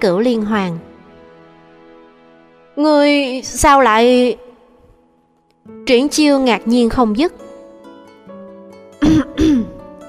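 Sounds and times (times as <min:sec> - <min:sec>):
speech: 0:00.0 - 0:00.9, 0:02.8 - 0:04.5, 0:05.6 - 0:07.4
light throaty cough: 0:09.0 - 0:09.8.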